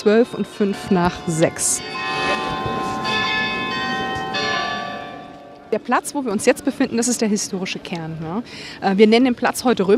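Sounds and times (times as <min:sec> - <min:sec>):
speech: 0:00.0 - 0:02.8, 0:05.7 - 0:09.9
steady outdoor noise: 0:00.0 - 0:09.9
church carillon bells ringing: 0:00.5 - 0:05.8.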